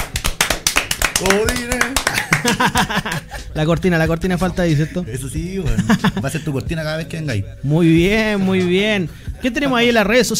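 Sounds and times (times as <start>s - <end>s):
small group clapping applauding a music group: 0.0s - 3.3s
speech: 1.2s - 1.8s, 2.4s - 10.3s
laughter: 1.3s - 3.5s, 4.7s - 6.7s.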